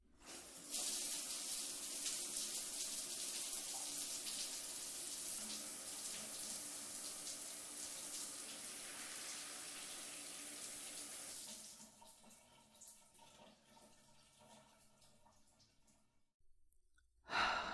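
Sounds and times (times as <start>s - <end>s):
shower water running: 0.2s - 16.0s
short breathy exhale: 17.3s - 17.7s.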